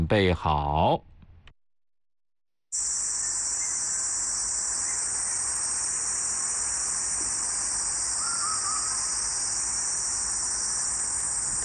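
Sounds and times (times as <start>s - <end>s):
speech: 0.1s - 1.1s, 2.7s - 3.0s
huigu cicada call: 2.8s - 11.6s.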